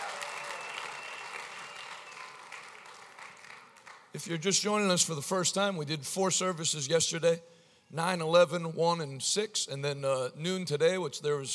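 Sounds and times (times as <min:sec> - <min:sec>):
large group audience clapping hands: 0:00.0 - 0:04.1
speech: 0:04.1 - 0:11.5.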